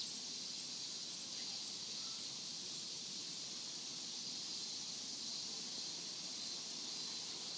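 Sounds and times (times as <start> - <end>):
pagoda crickets: 0.0 - 7.5.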